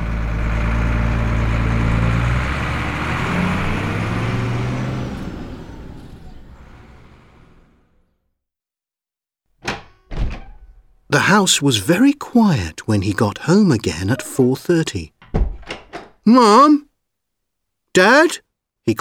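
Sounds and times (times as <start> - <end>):
heavy bus engine rumbling as it pulls away: 0.0 - 8.2, 11.1 - 15.3, 16.3 - 16.8, 18.0 - 18.9
sharp door-like thunks: 9.6 - 11.1, 15.2 - 16.2
speech: 11.1 - 15.2, 16.2 - 16.9, 18.0 - 18.9.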